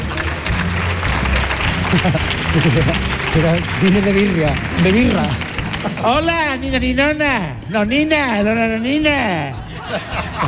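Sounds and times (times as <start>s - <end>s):
audience applause: 0.0s - 6.5s
laughter: 1.4s - 4.3s, 5.6s - 6.2s, 9.4s - 10.4s
speech: 1.9s - 10.4s.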